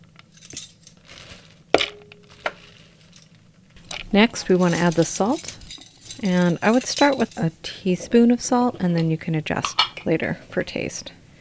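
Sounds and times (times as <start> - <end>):
pine nuts tipping into a food processor bowl with garlic cloves: 0.0 - 7.6
speech: 4.1 - 5.6, 6.2 - 11.2.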